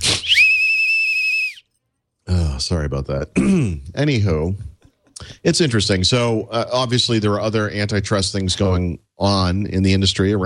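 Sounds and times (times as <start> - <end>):
whistle blast: 0.1 - 1.7
speech: 2.6 - 4.7, 5.4 - 10.4.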